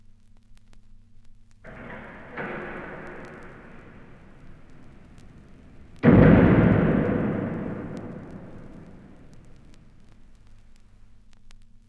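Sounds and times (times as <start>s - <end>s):
crypt door closing: 1.7s - 10.2s.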